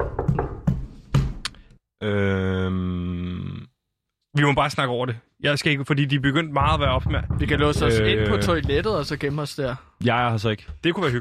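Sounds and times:
knocking on a door: 0.0 - 1.4, 6.6 - 9.4
speech: 2.0 - 2.9, 4.4 - 11.1.

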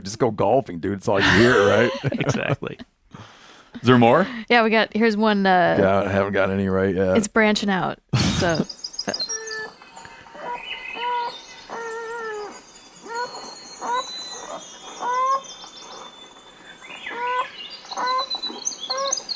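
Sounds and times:
speech: 0.1 - 9.2
laughter: 1.1 - 2.8, 3.8 - 4.3, 8.2 - 9.2
North American beaver kits whining inside a lodge: 1.2 - 2.1, 8.4 - 19.3.

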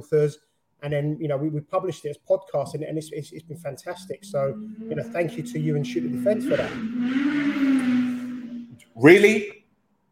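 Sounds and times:
speech: 0.0 - 8.1, 9.0 - 9.6
motorcycle engine passing: 2.6 - 8.8.

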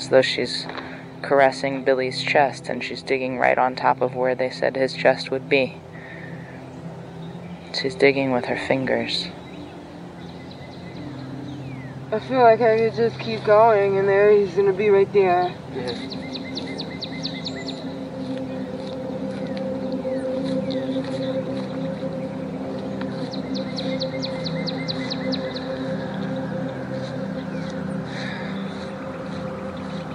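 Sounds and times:
outdoor birdsong with quick high chirping trills: 0.0 - 30.1
speech: 0.1 - 5.9, 7.8 - 9.4, 12.1 - 16.3
steady low droning hum: 6.3 - 30.1.

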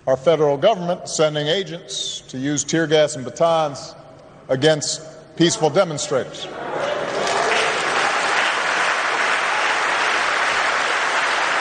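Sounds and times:
speech: 0.0 - 6.8
large crowd of partisan supporters applauding a political speaker: 6.5 - 11.5.

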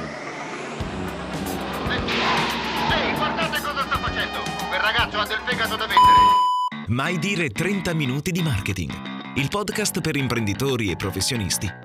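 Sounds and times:
car roaring past at speed between two other cars: 0.0 - 5.4
speech: 5.2 - 11.8.

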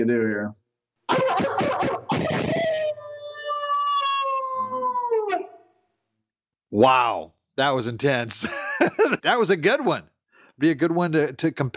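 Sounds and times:
speech: 0.0 - 2.7, 6.7 - 11.7
person imitating a dog's howl: 1.1 - 5.6
laughter: 8.4 - 9.2.

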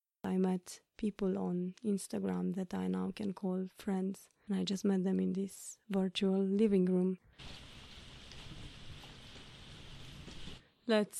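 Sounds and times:
speech: 0.4 - 7.7, 10.9 - 11.1
heavy rain with drops pattering on a surface: 7.3 - 10.6.

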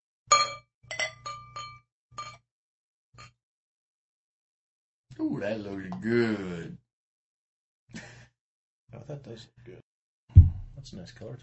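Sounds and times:
glassy clinks and clatter as a beer is opened: 0.3 - 2.4
speech: 5.2 - 6.8, 8.9 - 9.8, 10.8 - 11.4.

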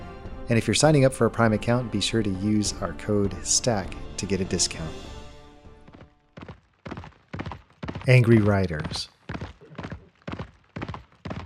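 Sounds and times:
speech: 0.5 - 5.2, 8.1 - 9.2
heavy horse hooves pounding on paving stones: 5.9 - 11.4.

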